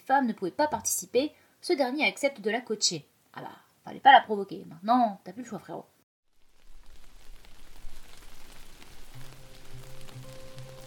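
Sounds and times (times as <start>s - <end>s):
speech: 0.1s - 5.9s
cold rain pattering: 6.2s - 10.8s.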